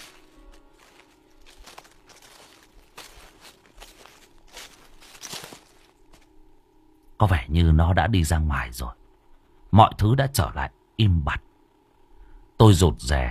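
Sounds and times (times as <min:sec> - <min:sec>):
quiet footsteps rustling and crinkling over scattered paper: 0:00.0 - 0:06.4
speech: 0:07.2 - 0:09.0, 0:09.7 - 0:11.5, 0:12.6 - 0:13.2.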